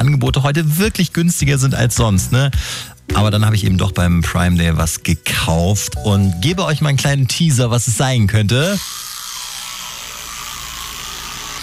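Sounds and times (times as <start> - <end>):
speech: 0.2 - 9.0
high-pitched electric toothbrush buzzing: 8.4 - 11.6.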